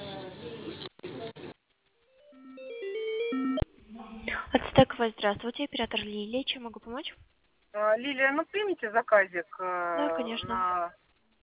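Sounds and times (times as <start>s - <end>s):
noisy telephone line sound: 0.0s - 11.0s
telephone ringtone over the line while call is transferred: 2.2s - 3.6s
speech: 4.8s - 11.0s.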